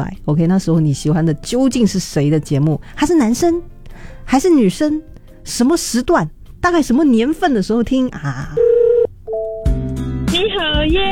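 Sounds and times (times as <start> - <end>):
speech: 0.0 - 8.7, 10.5 - 11.1
steady electronic telephone dialing tones: 8.5 - 9.8.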